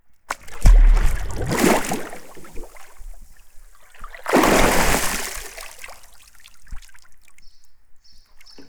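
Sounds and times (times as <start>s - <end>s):
water splash in a pool: 0.3s - 3.4s, 4.0s - 6.0s.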